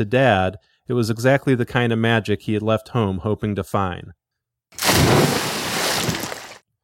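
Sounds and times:
speech: 0:00.0 - 0:04.2
horse with rider diving into a shallow tank of water: 0:04.8 - 0:06.6
water churning in a shallow tank: 0:04.8 - 0:06.6.

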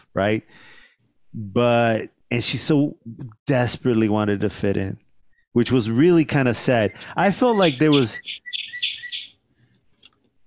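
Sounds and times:
speech: 0:00.1 - 0:09.0
macaw squawking in harsh raspy calls: 0:06.8 - 0:09.4.

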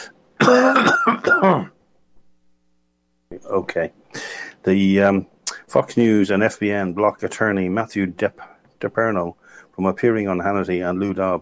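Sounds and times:
speech: 0:00.0 - 0:00.8, 0:03.6 - 0:04.0, 0:04.6 - 0:11.4
person clearing throat: 0:00.4 - 0:01.8
person coughing: 0:00.4 - 0:01.8.

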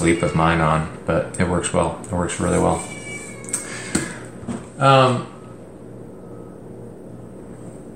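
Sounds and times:
cat meowing to be let in: 0:00.0 - 0:00.7, 0:02.5 - 0:04.0
speech: 0:00.0 - 0:03.0, 0:04.8 - 0:05.3.

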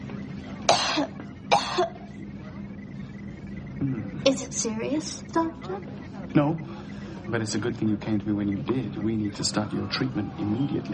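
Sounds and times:
quiet low hum: 0:00.0 - 0:10.9
harsh chesty coughs: 0:00.7 - 0:02.1
speech: 0:01.0 - 0:01.2, 0:04.3 - 0:10.9.

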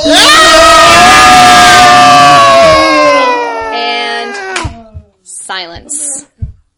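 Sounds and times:
group of people screaming together: 0:00.0 - 0:04.8.

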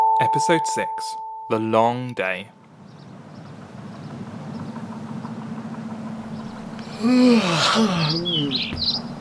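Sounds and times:
speech: 0:00.2 - 0:02.6, 0:07.0 - 0:09.1
birds chirping in a dawn chorus: 0:02.6 - 0:09.2.

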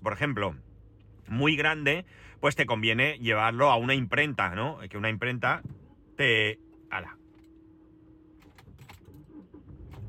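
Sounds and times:
speech: 0:00.0 - 0:00.7, 0:01.3 - 0:07.2
car engine low rumble while driven: 0:00.0 - 0:10.0
light clinks and rattles: 0:08.4 - 0:09.3.

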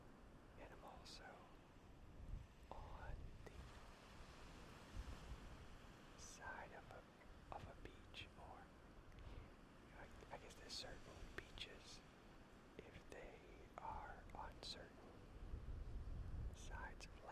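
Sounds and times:
person whispering: 0:00.6 - 0:01.6, 0:02.7 - 0:03.8, 0:06.2 - 0:12.0, 0:12.8 - 0:15.0, 0:16.6 - 0:17.2
speech: 0:01.0 - 0:01.5
wind gusts buffeting the microphone: 0:02.0 - 0:05.9, 0:15.4 - 0:16.9
surf waves washing onto a windy beach: 0:03.6 - 0:06.2.

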